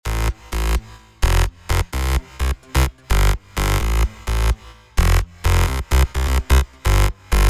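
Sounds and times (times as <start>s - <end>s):
bass electronic dance music: 0.0s - 7.4s.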